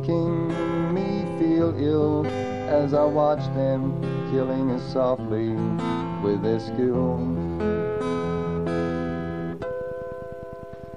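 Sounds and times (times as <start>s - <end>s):
speech: 0.0s - 0.4s, 1.6s - 7.8s
sustained ringing musical note with rich harmonics: 7.6s - 10.9s.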